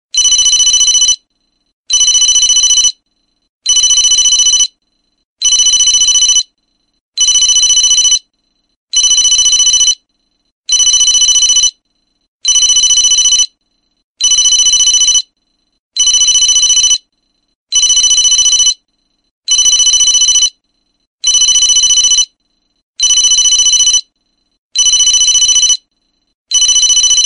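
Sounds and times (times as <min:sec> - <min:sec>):
corporate phone ringtone: 0:00.1 - 0:01.3, 0:01.9 - 0:03.0, 0:03.6 - 0:04.8, 0:05.4 - 0:06.6, 0:07.2 - 0:08.3, 0:08.9 - 0:10.1, 0:10.7 - 0:11.8, 0:12.4 - 0:13.6, 0:14.2 - 0:15.4, 0:16.0 - 0:17.1, 0:17.7 - 0:18.9, 0:19.5 - 0:20.6, 0:21.2 - 0:22.4, 0:23.0 - 0:24.2, 0:24.8 - 0:25.9, 0:26.5 - 0:27.2.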